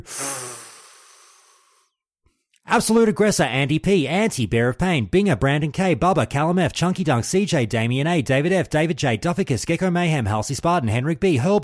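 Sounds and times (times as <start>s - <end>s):
speech: 0.0s - 0.6s, 2.7s - 11.6s
deep breath drawn before speaking: 0.0s - 2.0s.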